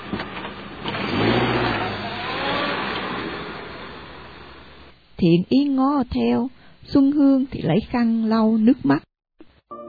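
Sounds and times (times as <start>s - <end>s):
car engine as the car pulls away and drives off: 0.0s - 4.9s
speech: 5.2s - 9.1s.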